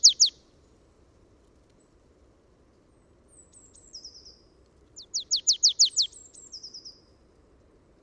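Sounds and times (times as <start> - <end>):
Marsh tit Poecile palustris calling: 0.0 - 0.4, 5.0 - 6.8.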